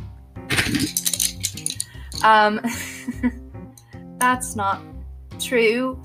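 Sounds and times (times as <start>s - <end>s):
colored pencils rattling together: 0.5s - 2.3s
speech: 0.7s - 1.0s, 2.2s - 3.4s, 4.2s - 6.0s.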